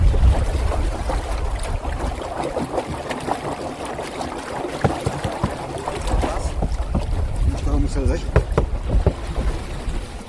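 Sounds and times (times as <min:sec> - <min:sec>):
steady wind buffeting the microphone: 0:00.0 - 0:02.4, 0:05.8 - 0:10.2
water sloshing against a small pedal boat on a windy reservoir: 0:00.0 - 0:10.2.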